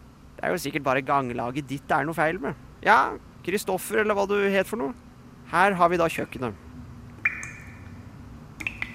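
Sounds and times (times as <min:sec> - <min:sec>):
low hum: 0:00.0 - 0:08.9
speech: 0:00.4 - 0:06.6
water dripping in a kitchen: 0:07.2 - 0:08.0, 0:08.6 - 0:08.9.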